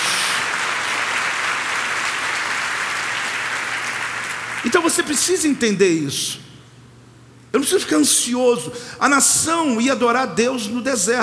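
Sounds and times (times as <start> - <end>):
audience applause: 0.0 - 4.7
speech: 4.6 - 6.5, 7.6 - 11.2.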